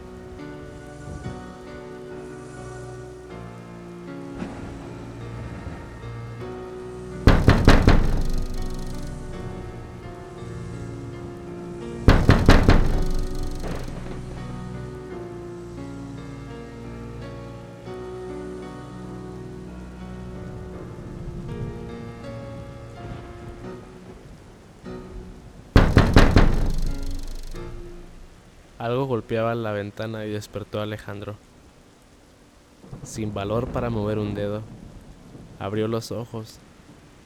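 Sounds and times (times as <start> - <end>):
soft sustained music: 0.0 - 31.0
heavy rain pouring down: 0.0 - 37.2
speech: 28.9 - 31.5, 33.2 - 34.8, 35.6 - 36.7.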